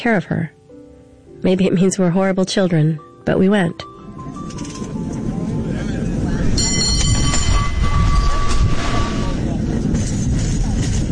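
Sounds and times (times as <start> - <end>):
speech: 0.0 - 0.6, 1.4 - 4.6
cable car rumbling on its rails: 4.1 - 11.1
cable car wheels' high metallic squeal: 6.4 - 9.6.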